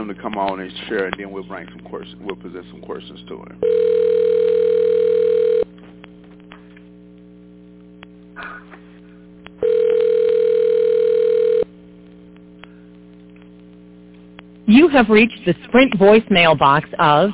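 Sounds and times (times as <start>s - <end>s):
speech: 0.0s - 4.3s, 14.9s - 17.3s
faint phone line noise and low hum: 0.0s - 17.3s
outgoing phone call ringback tones: 3.6s - 5.7s, 9.6s - 11.7s.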